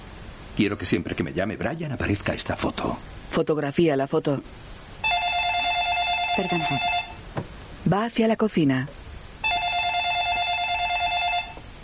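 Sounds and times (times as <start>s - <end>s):
speech: 0.6s - 5.1s, 6.4s - 6.9s, 7.9s - 9.0s
telephone ringing indoors: 5.0s - 7.2s, 9.4s - 11.6s.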